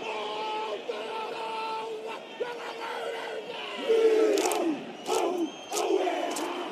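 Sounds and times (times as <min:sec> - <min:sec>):
haka rhythmic chanted war dance before a rugby match: 0:00.0 - 0:06.7
huge stadium crowd roaring and jeering over a haka: 0:00.0 - 0:06.7
stadium crowd whistling: 0:03.8 - 0:06.7.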